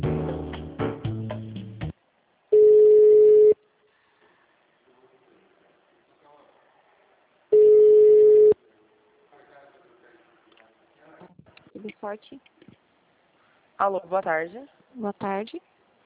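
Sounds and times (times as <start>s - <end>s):
telephone ringback tones during an office call transfer: 2.6s - 3.6s, 7.6s - 8.6s
speech: 12.0s - 12.7s, 13.8s - 15.7s.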